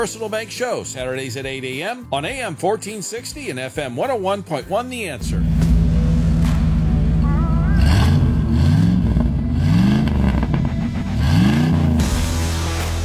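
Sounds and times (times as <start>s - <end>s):
speech: 0.0s - 5.6s
1992 Ford F-250 pickup big-block Ford 460 V8 engine idling and revving: 5.2s - 13.0s.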